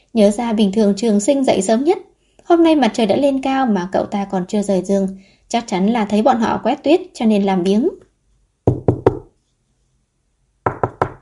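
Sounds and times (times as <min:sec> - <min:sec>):
speech: 0:00.1 - 0:08.0
hard banging on the door of a coffin shop: 0:08.7 - 0:09.3, 0:10.7 - 0:11.2.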